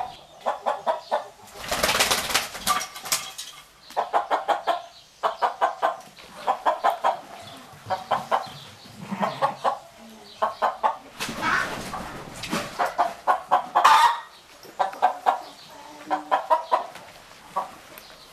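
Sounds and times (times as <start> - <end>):
chickens clucking: 0.0 - 18.3
chicken wings flapping: 1.5 - 3.5, 11.2 - 13.0.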